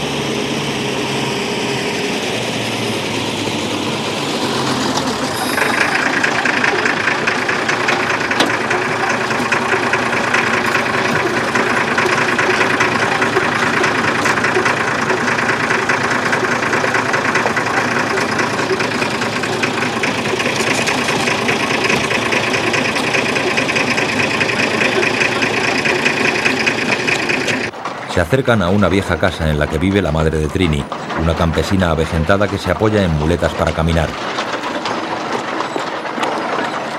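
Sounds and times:
old country bus engine idling at a village entrance in the Castilian highlands: 0:00.0 - 0:36.9
speech: 0:28.3 - 0:34.4.

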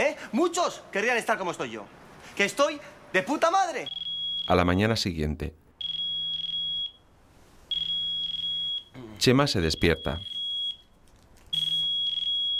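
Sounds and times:
speech: 0:00.2 - 0:05.6, 0:09.2 - 0:10.3
mobile phone alarm clock beeping: 0:03.8 - 0:04.6, 0:05.8 - 0:07.1, 0:07.7 - 0:08.9, 0:09.7 - 0:10.9, 0:11.5 - 0:12.5.

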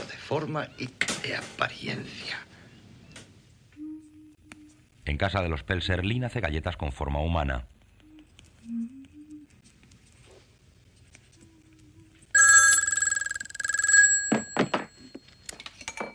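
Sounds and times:
speech: 0:00.3 - 0:02.5, 0:05.1 - 0:07.7
home telephone bell ringing: 0:12.4 - 0:15.6
knocks and clatters: 0:13.7 - 0:16.1.

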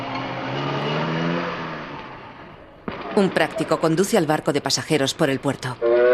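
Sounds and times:
car driving away: 0:00.0 - 0:02.8
speech: 0:03.2 - 0:06.0.

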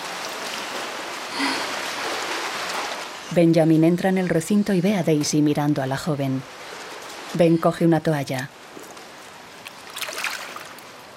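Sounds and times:
water splashing from someone swimming fast in a pool: 0:00.0 - 0:03.1, 0:09.6 - 0:11.1
speech: 0:03.4 - 0:06.7, 0:07.3 - 0:08.6.

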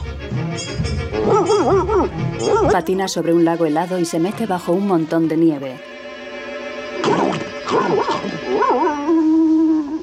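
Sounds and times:
dog barking loudly: 0:01.2 - 0:02.8, 0:07.0 - 0:08.9
dog wavering drawn-out yowl: 0:01.2 - 0:02.8, 0:07.0 - 0:10.0
speech: 0:02.4 - 0:05.9, 0:07.7 - 0:09.0.

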